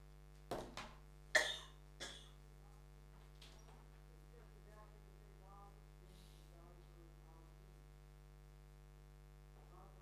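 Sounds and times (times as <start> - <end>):
low steady hum: 0.0 - 10.0
person coughing: 1.4 - 2.4.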